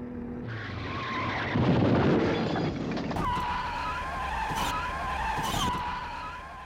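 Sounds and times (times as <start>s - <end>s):
BMW 7 Series tires squealing in a skid: 0.4s - 2.6s, 3.2s - 6.6s.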